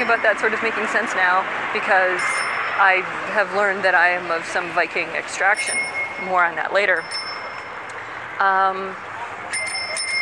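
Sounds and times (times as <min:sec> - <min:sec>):
bicycle bell ringing: 0:00.0 - 0:00.5, 0:02.1 - 0:03.0, 0:05.5 - 0:07.9, 0:09.5 - 0:10.1
outdoor street ambience: 0:00.0 - 0:10.1
speech: 0:00.1 - 0:07.2, 0:08.4 - 0:09.1.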